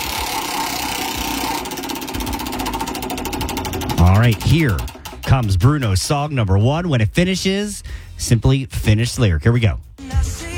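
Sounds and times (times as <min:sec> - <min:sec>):
big prize wheel ticking while spun for a song game: 0:00.0 - 0:06.4
noisy rumbling background: 0:00.0 - 0:09.1
speech: 0:04.2 - 0:09.8.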